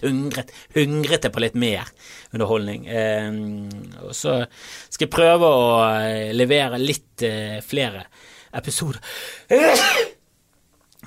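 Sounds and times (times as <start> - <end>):
speech: 0.0 - 10.1
person sneezing: 9.5 - 10.2.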